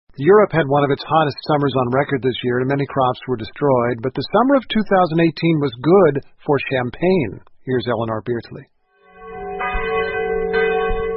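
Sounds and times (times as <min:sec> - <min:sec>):
speech: 0:00.2 - 0:08.7
abbey church bells tolling in Champagne, France: 0:09.1 - 0:11.1.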